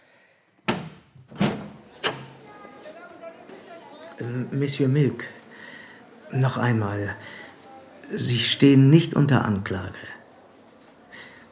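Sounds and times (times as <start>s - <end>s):
window frame and latch knocking thuds as a window is opened: 0.7s - 2.3s
speech: 4.2s - 5.4s, 6.3s - 7.4s, 8.1s - 10.2s.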